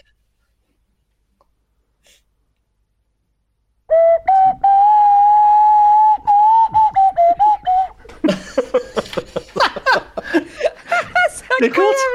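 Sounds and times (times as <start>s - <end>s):
nose flute playing a breathy wavering tone: 3.9s - 8.1s
people laughing and chuckling: 7.2s - 12.1s.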